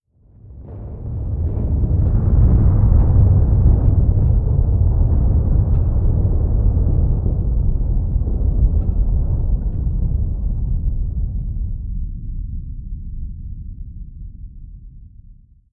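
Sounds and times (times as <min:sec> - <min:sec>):
distant explosion: 0:00.3 - 0:12.0.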